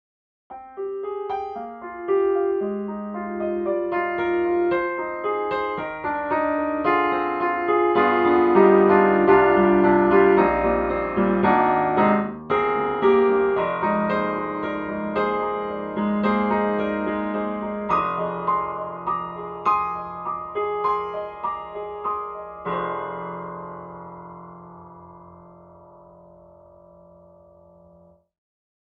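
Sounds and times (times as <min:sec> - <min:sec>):
jazz piano playing at a rehearsal: 0:00.5 - 0:28.2.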